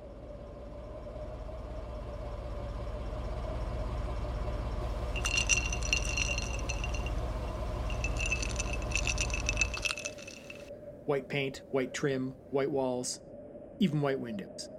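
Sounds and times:
white Cadillac engine idling: 0:00.5 - 0:10.6
ice cubes clinking and rattling out of a car tailpipe: 0:05.2 - 0:07.2, 0:07.8 - 0:10.7
speech: 0:11.1 - 0:14.7.

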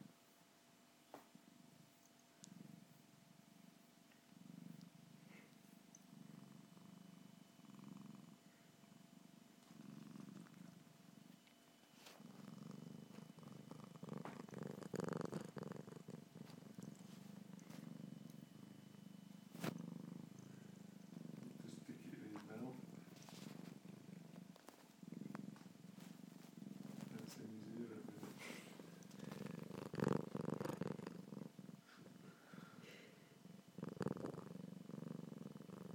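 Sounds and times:
cat purring loudly: 0:01.4 - 0:35.9
brief soft voice: 0:21.5 - 0:23.2, 0:27.0 - 0:29.3.

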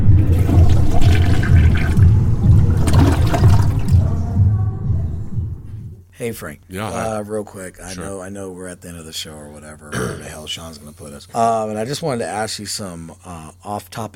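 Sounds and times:
toilet flushing with swirling water: 0:00.2 - 0:04.1
speech: 0:06.2 - 0:14.1.

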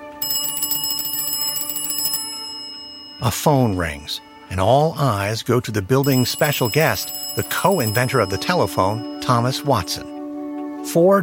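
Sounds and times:
clock striking one o'clock at a telegraph corporation in San Francisco: 0:00.2 - 0:03.4, 0:06.0 - 0:10.0
speech: 0:03.2 - 0:10.1, 0:10.8 - 0:11.2.

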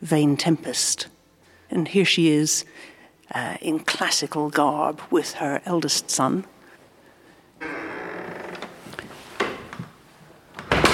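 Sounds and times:
speech: 0:00.0 - 0:06.6
heavy mahogany door swinging open with a grinding creak: 0:07.6 - 0:09.7.

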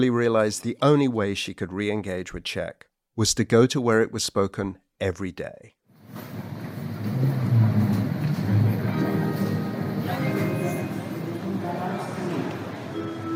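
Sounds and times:
speech: 0:00.0 - 0:06.5
low rumble of trains and machinery at Prague's main station: 0:06.0 - 0:13.3
indistinct crowd voices murmuring at Prague's main station: 0:06.2 - 0:13.3.

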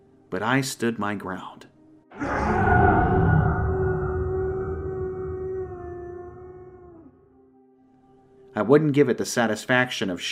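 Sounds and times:
speech: 0:00.3 - 0:02.6, 0:08.6 - 0:10.3
high-pitched snarling creature howl: 0:02.1 - 0:07.2.

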